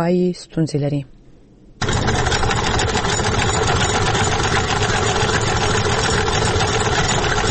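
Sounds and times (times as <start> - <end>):
speech: 0.0 - 1.2
hand-turned sewing machine stitching clothes in Kunar Afghanistan: 1.8 - 7.4.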